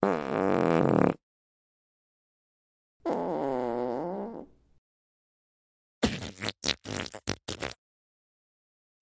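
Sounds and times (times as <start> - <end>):
farts: 0.0 - 1.2, 3.0 - 4.5, 6.0 - 7.8.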